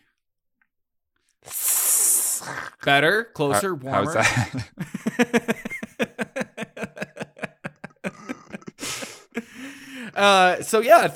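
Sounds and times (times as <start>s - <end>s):
person imitating a snake with a breathy hiss: 1.4s - 2.8s
speech: 2.4s - 5.6s, 10.2s - 11.1s
laughter: 4.0s - 10.3s.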